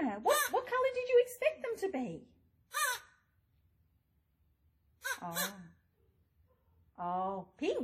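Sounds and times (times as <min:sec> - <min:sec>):
speech: 0:00.9 - 0:02.4, 0:05.2 - 0:05.7, 0:07.0 - 0:07.8
black Australian crow cawing in Australia: 0:02.7 - 0:03.3, 0:05.0 - 0:05.7.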